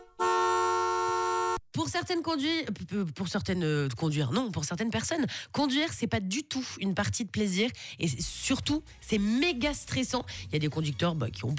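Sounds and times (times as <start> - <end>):
car horn honking: 0.0 - 1.6
speech: 1.8 - 11.5.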